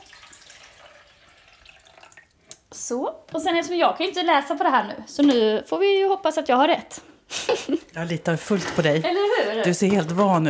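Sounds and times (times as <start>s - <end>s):
water pouring into the reservoir of an old-fashioned drip coffee maker: 0.0s - 2.4s, 8.2s - 10.4s
speech: 2.7s - 10.4s
laughter: 7.3s - 7.9s.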